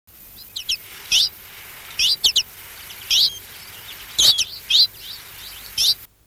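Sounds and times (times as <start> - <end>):
twite flight calls: 0.1 - 6.1.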